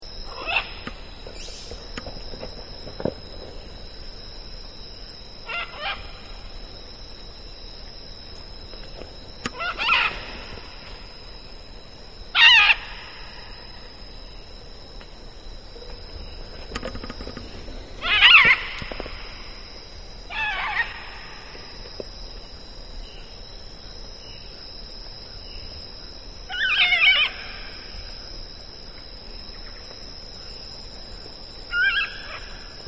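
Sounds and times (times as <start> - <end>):
scarlet macaw Ara macao calling: 0.3 - 1.7, 5.5 - 6.3, 9.4 - 10.9, 12.4 - 13.4, 18.0 - 19.5, 20.3 - 21.6, 26.5 - 27.6, 31.7 - 32.6.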